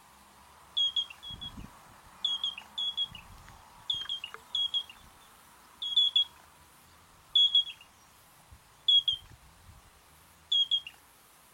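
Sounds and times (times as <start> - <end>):
Yellow-breasted Crake giving short high whistled notes: 0.8 - 1.6, 2.2 - 3.3, 3.9 - 5.1, 5.8 - 6.4, 7.4 - 7.9, 8.9 - 9.3, 10.5 - 11.0.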